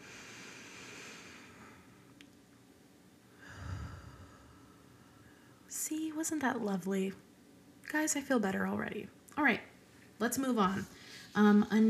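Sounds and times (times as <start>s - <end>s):
slow deliberate breath: 0.0s - 2.0s, 3.3s - 5.7s, 10.9s - 11.4s
faint steady hiss: 0.0s - 11.8s
speech: 5.8s - 7.3s, 7.9s - 11.8s.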